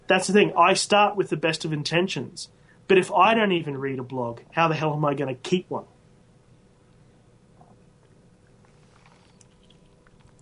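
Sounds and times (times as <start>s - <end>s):
steady low hum: 0.0s - 10.4s
speech: 0.1s - 5.9s
person sipping Diet Coke: 7.6s - 10.4s.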